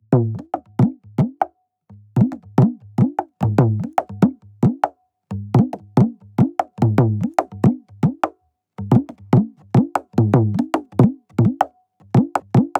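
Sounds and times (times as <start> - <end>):
Assamese folk dogor drum loop: 2.2 - 4.9, 5.6 - 12.7.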